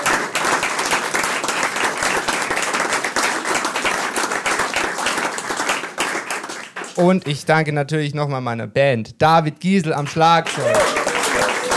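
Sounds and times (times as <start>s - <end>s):
audience clapping and applauding: 0.0s - 7.0s, 10.4s - 11.7s
speech: 7.0s - 11.0s.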